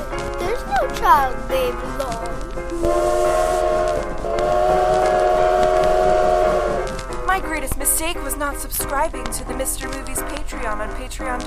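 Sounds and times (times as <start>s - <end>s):
moving train rumble: 0.0s - 11.4s
speech: 1.0s - 3.5s, 7.4s - 11.4s
train whistle: 2.7s - 7.0s.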